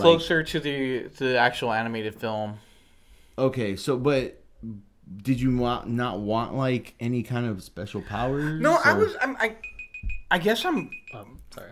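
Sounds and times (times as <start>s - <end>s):
speech: 0.0s - 2.7s, 3.4s - 9.7s, 10.3s - 11.7s
old timer beeping: 9.5s - 11.4s.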